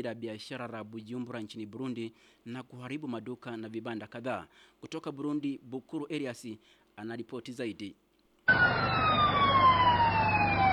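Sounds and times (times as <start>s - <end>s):
speech: 0.0s - 9.0s
fire brigade siren wailing: 8.5s - 10.7s.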